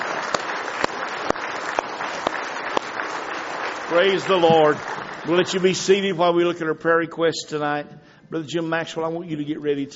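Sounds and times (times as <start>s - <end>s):
sharper, louder claps: 0.0s - 5.7s
crowd applauding: 0.0s - 6.7s
speech: 3.9s - 9.9s.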